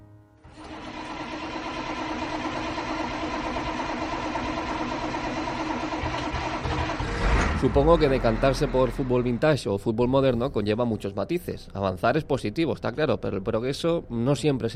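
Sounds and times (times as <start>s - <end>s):
large old 1980s bus engine cranking, starting and idling: 0.5s - 9.6s
speech: 7.6s - 14.7s.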